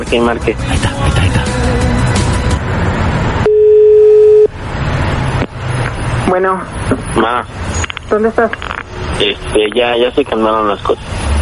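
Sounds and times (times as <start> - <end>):
speech: 0.0 - 1.8, 6.3 - 11.2
dense noise: 0.0 - 11.4
telephone busy signal electronic beep: 3.4 - 4.5.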